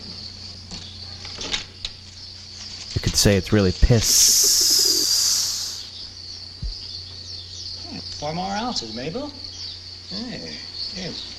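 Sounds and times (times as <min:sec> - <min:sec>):
steady bright hiss: 0:03.0 - 0:06.0
speech: 0:03.1 - 0:04.8, 0:08.3 - 0:09.5, 0:10.1 - 0:11.3
low cooing bird call: 0:04.4 - 0:05.9.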